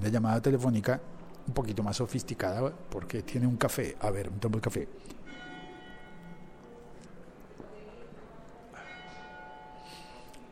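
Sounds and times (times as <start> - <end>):
speech: 0.0 - 5.5
church bells ringing: 5.2 - 6.8, 8.7 - 10.4.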